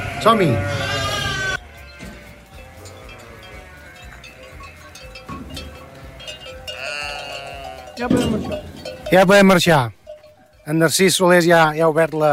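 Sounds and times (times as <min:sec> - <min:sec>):
flock of lambs bleating in a pen in Rupià, Empordà: 0:00.0 - 0:08.6
steady farmyard background: 0:00.0 - 0:12.3
speech: 0:00.2 - 0:00.9, 0:08.0 - 0:10.0, 0:10.7 - 0:12.3.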